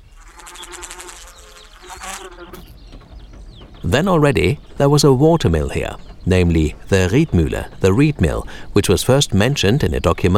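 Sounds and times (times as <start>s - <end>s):
mosquitoes buzzing: 0.0s - 2.7s
speech: 3.9s - 10.3s.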